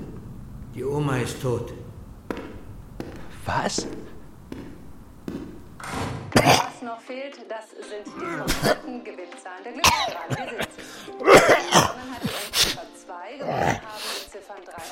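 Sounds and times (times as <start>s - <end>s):
speech: 0.8s - 1.8s, 3.5s - 4.1s, 7.1s - 11.3s
person coughing: 6.3s - 6.8s, 8.2s - 8.9s, 9.8s - 12.8s
gasping breaths: 10.6s - 11.2s, 13.4s - 14.8s.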